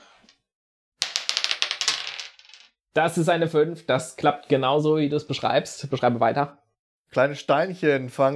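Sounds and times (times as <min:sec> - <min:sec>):
dice rolling across a hard tabletop during a tabletop role-playing game: 0:01.0 - 0:02.8
speech: 0:02.9 - 0:08.3.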